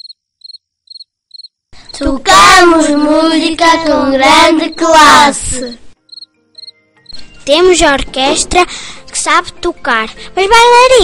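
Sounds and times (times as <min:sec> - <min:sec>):
crickets chirping in high pulsing trills: 0:00.0 - 0:01.8, 0:06.0 - 0:06.8
speech: 0:02.0 - 0:05.8, 0:07.5 - 0:11.0.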